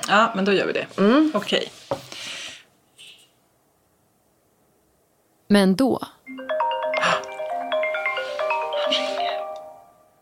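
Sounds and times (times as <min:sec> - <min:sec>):
speech: 0:00.1 - 0:02.4, 0:05.5 - 0:06.4
outgoing video call electronic ringtone of chiming tones: 0:06.3 - 0:10.1.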